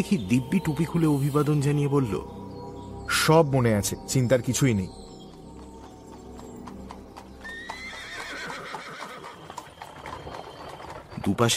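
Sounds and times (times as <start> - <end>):
speech: 0.0 - 2.4, 3.1 - 5.0, 11.3 - 11.5
horse-drawn carriage hooves clip-clopping on a paved road: 4.3 - 11.5
horse whinnying: 7.4 - 10.2.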